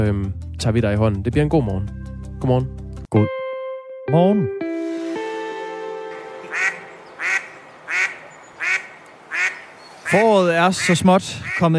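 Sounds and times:
speech: 0.0 - 3.4, 4.1 - 4.8, 10.1 - 11.7
Danish mallard drake quacking: 6.4 - 11.7.

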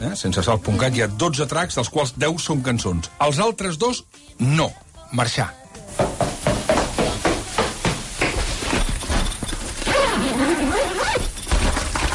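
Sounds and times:
speech: 0.0 - 6.1
footsteps running down stairs: 6.0 - 10.0
zipper rasping open: 8.6 - 12.1
keys jingling: 8.7 - 11.6.

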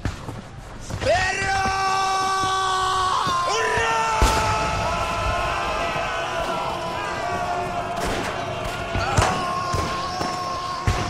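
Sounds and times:
dense battle din: 1.0 - 11.0
man yelling in a long strained cry while charging: 1.0 - 11.0
sharp gunshots: 3.9 - 11.0.

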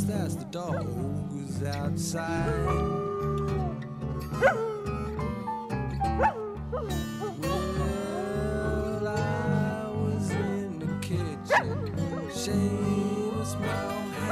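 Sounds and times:
person singing: 0.0 - 14.3
slow song with guitar: 0.0 - 14.3
dog barking and yelping in a studio: 4.4 - 4.8, 6.2 - 7.7, 11.5 - 12.4, 13.8 - 14.3.

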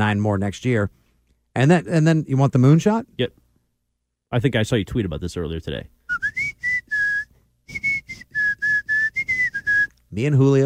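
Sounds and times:
speech: 0.0 - 1.0, 1.6 - 3.4, 4.3 - 6.0, 10.1 - 10.6
person whistling a bouncy pop song melody: 6.1 - 10.0.

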